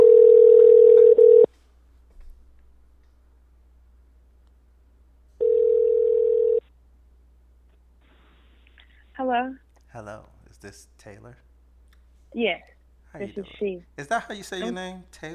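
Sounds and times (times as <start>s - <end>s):
telephone dial tone while placing call: 0.0s - 1.5s, 5.4s - 6.6s
speech: 9.3s - 11.5s, 12.3s - 15.3s.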